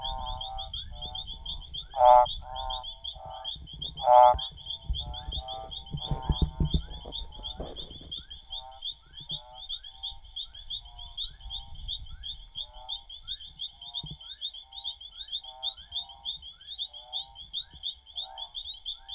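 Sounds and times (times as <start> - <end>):
Lavilla's escuerzo Odontophrynus lavillai advertisement call: 0.0 - 8.8
chorus of softer frog notes: 0.0 - 19.1
steady high insect buzzing: 0.0 - 19.1.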